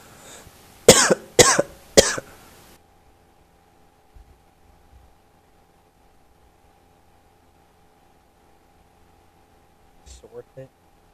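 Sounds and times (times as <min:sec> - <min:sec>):
boys coughing harshly: 0:00.9 - 0:02.3
speech: 0:10.6 - 0:10.8.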